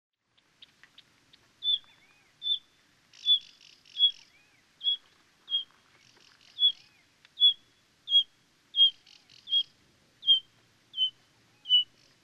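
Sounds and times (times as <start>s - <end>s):
Pririt batis calling, Batis pririt: 1.6s - 5.7s, 6.5s - 11.9s.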